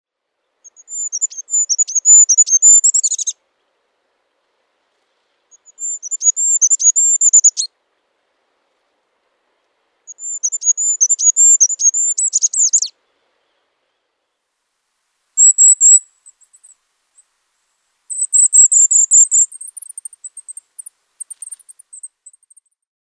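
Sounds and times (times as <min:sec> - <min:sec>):
small bird singing: 0:00.6 - 0:03.4, 0:05.5 - 0:07.7, 0:10.1 - 0:14.1, 0:15.4 - 0:17.3, 0:18.1 - 0:22.8.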